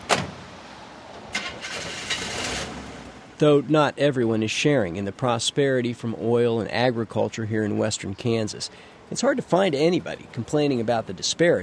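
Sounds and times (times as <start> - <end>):
1981 Chevy pickup truck engine starting and idling roughly: 1.3 - 3.2
speech: 3.4 - 11.6.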